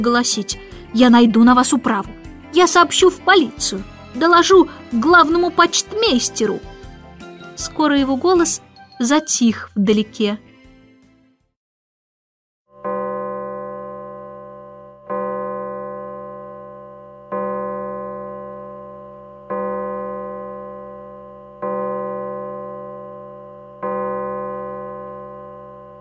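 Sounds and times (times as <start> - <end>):
speech: 0.0 - 6.8, 7.6 - 10.5
large town square clock bell tolling: 12.8 - 25.9.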